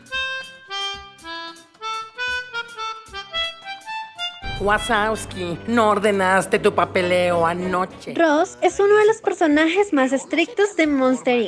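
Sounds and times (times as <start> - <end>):
melodica playing a song: 0.0 - 8.4
steady beat of soft drum hits: 4.4 - 8.0
speech: 4.6 - 11.4.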